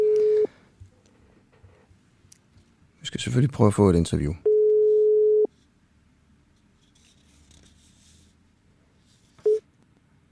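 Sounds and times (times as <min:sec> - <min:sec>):
telephone ringback tone while calling a party press phone: 0:00.0 - 0:00.5, 0:04.4 - 0:05.5, 0:09.4 - 0:09.6
speech: 0:03.1 - 0:04.5.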